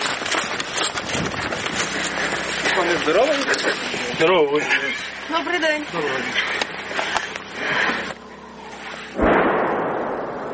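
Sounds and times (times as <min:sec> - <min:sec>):
rough noisy outdoor bursts: 0:00.0 - 0:10.5
speech: 0:03.0 - 0:06.7
heavy artillery cannon boom with lingering rumbling roar: 0:09.2 - 0:10.5.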